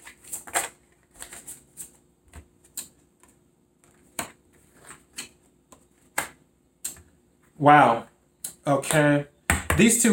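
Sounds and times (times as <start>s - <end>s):
tarot cards being shuffled and drawn for a reading: 0.0s - 6.3s
speech: 7.6s - 8.1s, 8.7s - 10.1s.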